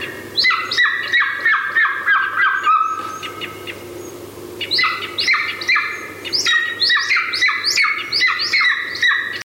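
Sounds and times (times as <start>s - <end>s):
golden eagle crying: 0.0s - 4.0s, 4.6s - 9.4s.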